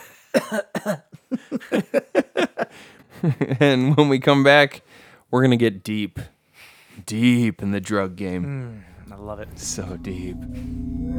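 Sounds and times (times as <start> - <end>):
fit of harsh throaty coughs: 0.0 - 2.7
speech: 0.5 - 2.1, 3.2 - 6.3, 7.0 - 11.1
laughter: 1.2 - 4.0.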